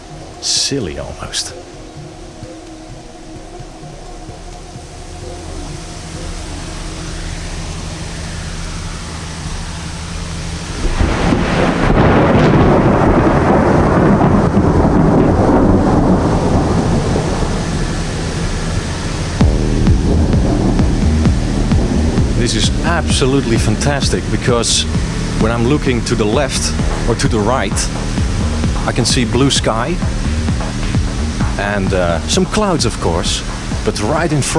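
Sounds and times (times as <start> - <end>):
steady hiss of noise: 0.0 - 34.5
speech: 0.4 - 1.8, 23.1 - 28.2, 28.8 - 30.1, 31.6 - 34.5
thunder from newly forming thunderstorms: 9.4 - 34.5.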